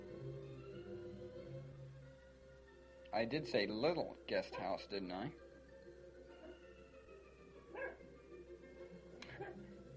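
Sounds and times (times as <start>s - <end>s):
speech: 3.1s - 5.4s
poodle barking: 4.5s - 4.8s, 7.6s - 8.1s.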